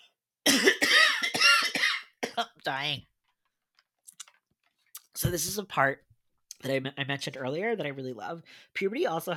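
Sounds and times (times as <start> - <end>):
person coughing harshly: 0.4 - 2.6
speech: 2.4 - 3.1, 5.2 - 9.3.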